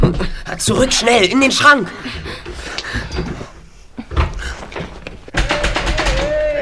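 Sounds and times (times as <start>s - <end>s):
speech: 0.0s - 2.4s
door pushed shut with a dull thunk: 4.1s - 6.5s.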